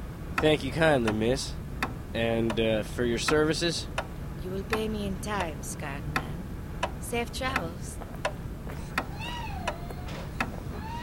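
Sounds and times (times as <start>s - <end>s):
speech: 0.4s - 1.6s, 2.1s - 6.2s, 7.1s - 8.0s
cat meowing: 8.7s - 11.0s.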